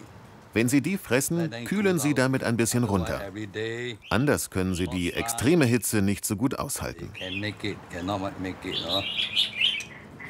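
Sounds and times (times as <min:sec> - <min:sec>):
speech: 0:00.5 - 0:09.6
chorus of birds chirping and trilling in a front garden: 0:01.8 - 0:05.7, 0:06.8 - 0:10.2.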